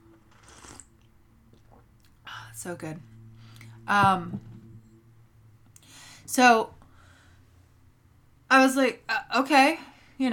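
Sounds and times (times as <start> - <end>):
low steady room hum: 0.0 - 10.3
person slurping hot tea: 0.3 - 0.9
speech: 2.6 - 3.2, 3.9 - 4.5, 6.3 - 6.8, 8.5 - 10.3.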